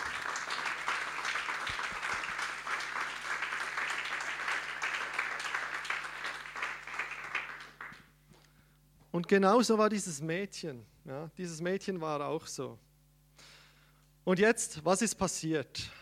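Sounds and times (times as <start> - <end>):
church audience applauding: 0.0 - 8.1
speech: 9.2 - 12.9, 14.3 - 16.0.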